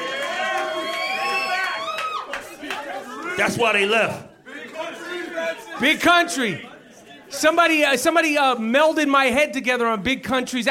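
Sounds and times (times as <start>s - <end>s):
large live crowd cheering: 0.0s - 6.6s
speech: 3.4s - 4.3s, 5.8s - 6.7s, 7.3s - 10.6s.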